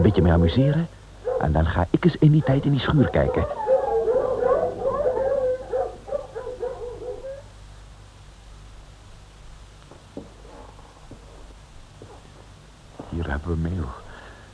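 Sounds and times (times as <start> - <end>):
speech: 0.0 - 3.6
several dogs barking and howling: 0.0 - 7.6, 10.4 - 11.0
low hum: 0.0 - 14.5.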